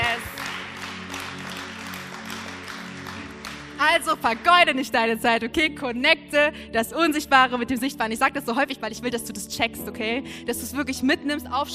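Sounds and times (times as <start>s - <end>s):
audience applause: 0.0s - 4.5s
speech: 3.8s - 11.7s.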